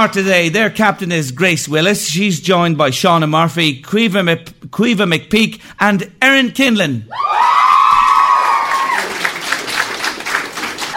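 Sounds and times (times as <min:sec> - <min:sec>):
speech: 0:00.0 - 0:07.4
audience whooping and cheering: 0:07.1 - 0:09.8
audience applause: 0:07.3 - 0:10.9.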